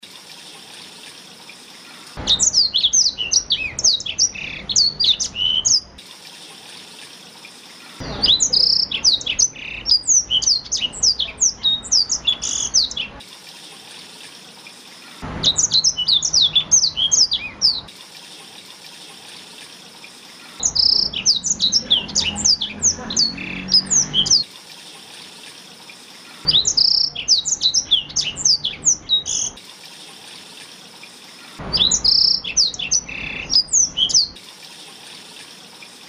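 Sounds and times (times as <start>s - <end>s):
Blackthroat bird singing: 2.2s - 6.0s, 8.0s - 13.2s, 15.1s - 17.9s, 20.6s - 24.4s, 26.5s - 29.6s, 31.6s - 34.4s.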